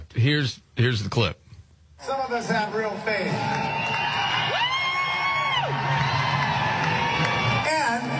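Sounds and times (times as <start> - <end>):
speech: 0.2 - 1.4, 2.0 - 4.1
concert crowd roaring: 3.2 - 8.1.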